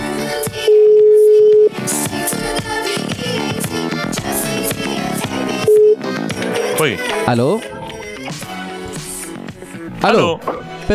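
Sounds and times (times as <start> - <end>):
telephone ringing tone of a call being dialed: 0.6 - 1.8, 5.6 - 6.2
loud busy music: 1.7 - 10.9
speech: 6.8 - 7.8, 10.0 - 10.9.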